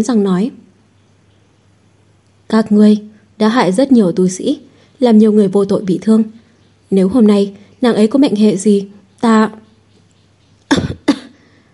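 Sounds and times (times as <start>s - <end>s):
speech: 0.0s - 0.6s, 2.5s - 9.6s
badly injured woman coughing wetly, choking on blood: 10.7s - 11.4s.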